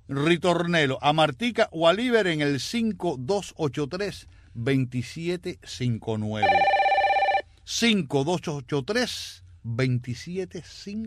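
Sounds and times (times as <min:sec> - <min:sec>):
speech: 0:00.1 - 0:06.8, 0:07.7 - 0:11.0
telephone ringing for an incoming call: 0:06.4 - 0:07.5.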